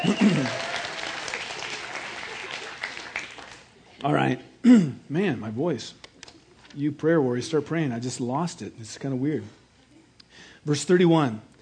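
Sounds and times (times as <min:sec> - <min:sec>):
audience applause: 0:00.0 - 0:03.8
speech: 0:04.0 - 0:06.0, 0:06.8 - 0:09.6, 0:10.6 - 0:11.5.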